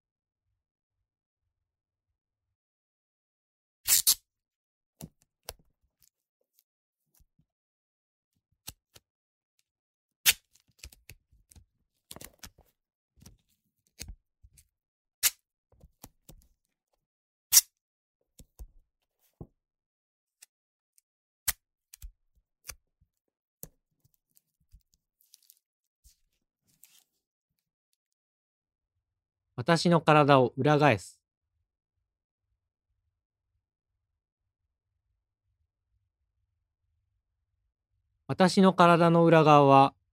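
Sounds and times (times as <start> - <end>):
tape being torn off and pressed down: 3.9 - 4.2, 10.2 - 11.0, 15.2 - 15.4
speech: 29.6 - 31.2, 38.3 - 40.0.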